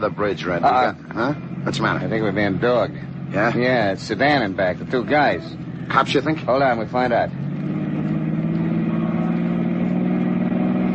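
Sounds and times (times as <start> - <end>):
speech: 0.0 - 7.4
car engine roaring as car speeds away from pursuing police car: 0.0 - 10.9.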